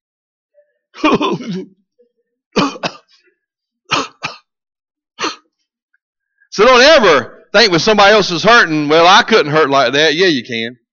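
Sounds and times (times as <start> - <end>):
rough throat clearing: 1.0 - 1.8, 2.6 - 3.3, 3.9 - 4.5, 5.2 - 5.5
sharp loud coughs: 1.0 - 1.8, 2.6 - 3.3, 3.9 - 4.5, 5.2 - 5.5
speech: 1.1 - 1.8, 6.6 - 10.8.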